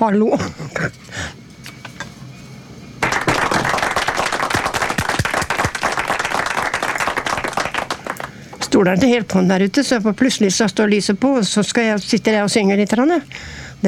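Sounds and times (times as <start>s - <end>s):
speech: 0.0s - 1.4s, 8.8s - 13.8s
hands clapping in the studio: 3.0s - 8.4s.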